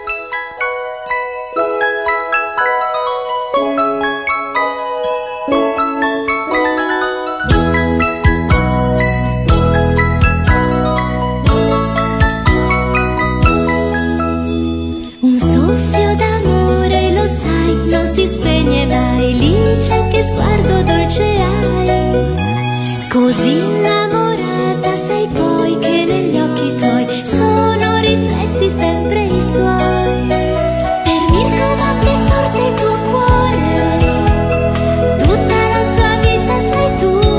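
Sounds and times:
bright tinkling chime-like melody notes: 0:00.0 - 0:37.3
upbeat instrumental anime theme song band with bass and drums: 0:07.5 - 0:13.9, 0:30.8 - 0:37.3.

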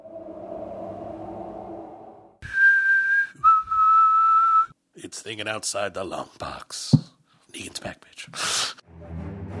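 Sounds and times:
haunting whistled tune: 0:02.4 - 0:04.8
speech: 0:05.2 - 0:08.7.

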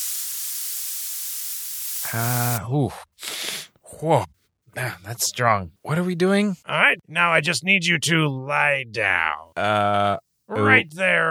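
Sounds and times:
aerosol spray hissing onto a teddy bear: 0:00.0 - 0:02.6
short breathy bursts: 0:00.0 - 0:02.6, 0:03.2 - 0:03.8
speech: 0:02.1 - 0:03.4, 0:04.0 - 0:11.2.

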